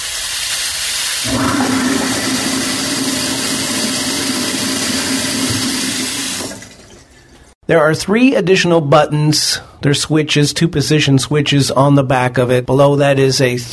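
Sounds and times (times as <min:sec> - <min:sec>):
old-school sink water running: 0:00.0 - 0:07.6
speech: 0:01.2 - 0:01.5, 0:07.7 - 0:13.7
garbage disposal motor hum: 0:01.2 - 0:07.5.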